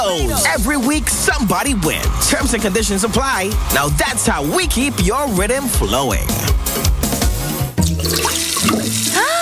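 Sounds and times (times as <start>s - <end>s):
speech: 0.1s - 6.9s
water running from a tap: 7.8s - 9.4s.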